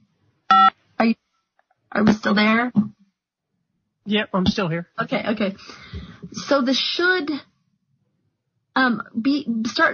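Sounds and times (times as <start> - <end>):
short electronic phone beeps signalling an incoming call: 0.5 - 0.8
speech: 1.0 - 1.2, 1.9 - 2.9, 4.0 - 7.5, 8.8 - 9.9.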